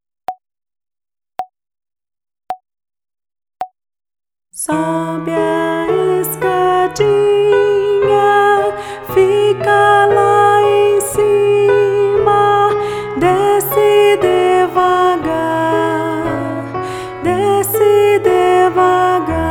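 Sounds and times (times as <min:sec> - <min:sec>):
person singing: 0:04.6 - 0:19.4.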